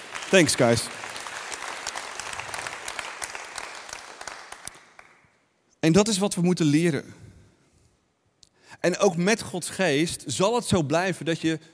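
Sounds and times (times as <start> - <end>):
audience applause: 0.0 - 5.2
speech: 0.3 - 1.0, 5.8 - 7.3, 8.8 - 11.7.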